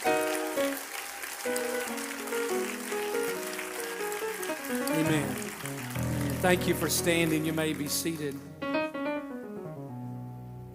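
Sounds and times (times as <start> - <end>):
audience clapping: 0.0 - 8.4
speech: 6.4 - 8.5.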